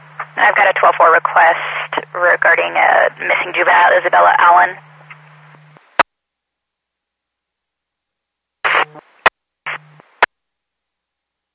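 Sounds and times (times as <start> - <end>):
hissy two-way radio static: 0.0 - 6.0, 8.6 - 10.3
low hum: 0.0 - 6.0
sharp two-way radio squelch click: 0.2 - 6.0, 8.7 - 9.0, 9.7 - 10.3
speech: 0.4 - 4.9.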